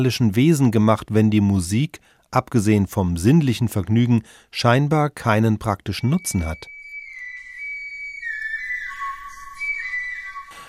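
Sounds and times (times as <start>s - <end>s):
speech: 0.0s - 6.7s
breathy swan bone flute playing a slow wavering melody: 6.0s - 10.6s.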